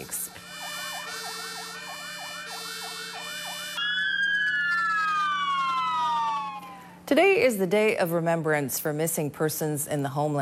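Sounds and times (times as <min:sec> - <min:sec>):
fire truck sirens wailing: 0:00.0 - 0:07.0
speech: 0:07.1 - 0:10.4.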